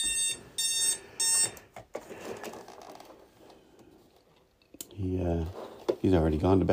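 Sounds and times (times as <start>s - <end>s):
alarm clock ringing with harsh buzzing electronic tone: 0.0s - 1.6s
room noise: 0.0s - 6.7s
rustling: 1.9s - 4.6s, 5.2s - 6.7s
speech: 5.0s - 6.7s.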